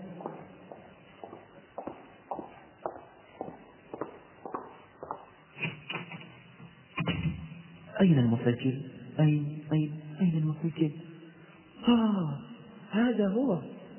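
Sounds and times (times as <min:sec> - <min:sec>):
footsteps walking across a room: 0:00.0 - 0:07.6
speech: 0:08.0 - 0:11.1, 0:11.9 - 0:13.7.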